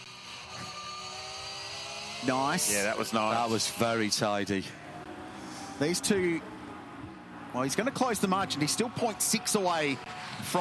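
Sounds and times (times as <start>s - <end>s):
Porsche race car roaring at high revs on a track: 0.0s - 10.5s
speech: 2.2s - 4.9s, 5.8s - 6.5s, 7.6s - 10.5s.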